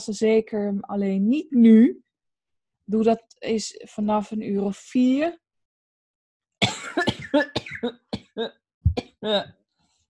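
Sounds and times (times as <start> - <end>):
speech: 0.0 - 2.0, 2.9 - 5.4, 6.8 - 8.6, 9.2 - 9.6
person coughing: 6.6 - 9.5.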